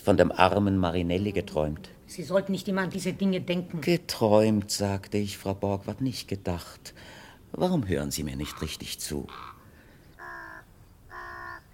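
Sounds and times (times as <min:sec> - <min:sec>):
speech: 0:00.0 - 0:09.5
ravens cawing: 0:08.4 - 0:11.7.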